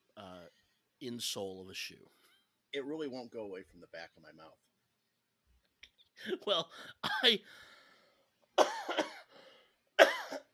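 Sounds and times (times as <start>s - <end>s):
speech: 1.0s - 4.7s, 6.2s - 7.7s
person coughing: 7.0s - 7.4s, 8.6s - 9.3s, 10.0s - 10.5s.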